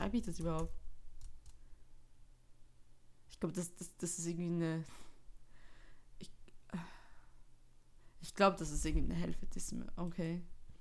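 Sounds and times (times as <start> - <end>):
speech: 0.1 - 0.8, 3.4 - 5.1, 6.2 - 7.0, 8.2 - 10.5
computer keyboard keystrokes while typing an online search: 0.2 - 1.6.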